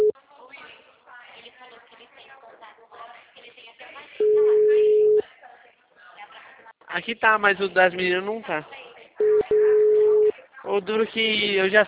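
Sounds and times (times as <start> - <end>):
telephone call tone beep: 4.2 - 5.2, 9.2 - 10.3
speech: 7.0 - 8.8, 10.6 - 11.8.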